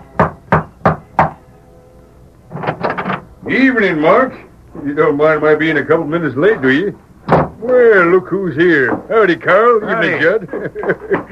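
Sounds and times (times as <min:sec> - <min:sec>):
knocking on the wooden door of a ranch house: 0:00.2 - 0:01.4, 0:07.3 - 0:07.6
speech: 0:03.5 - 0:07.0, 0:07.7 - 0:11.3
laughter: 0:09.6 - 0:11.3.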